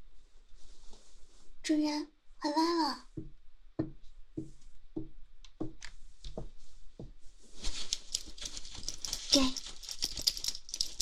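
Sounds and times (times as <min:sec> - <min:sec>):
speech: 0:01.7 - 0:03.4
German Shepherd's dog leash chain rattling: 0:07.6 - 0:11.0.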